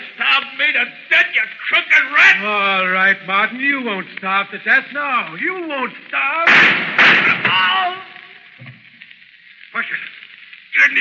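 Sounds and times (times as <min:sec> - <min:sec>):
speech: 0:00.7 - 0:07.8
gunshot in a radio drama: 0:06.5 - 0:07.8.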